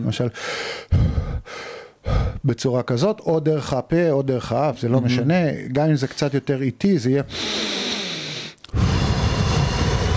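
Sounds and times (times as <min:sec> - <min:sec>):
speech: 0:00.0 - 0:08.0
rapid forceful hyperventilation breaths: 0:00.4 - 0:02.4, 0:07.3 - 0:10.1.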